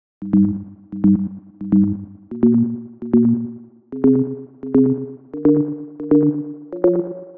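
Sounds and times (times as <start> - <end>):
thin bass melody loop: 0.2 - 7.3.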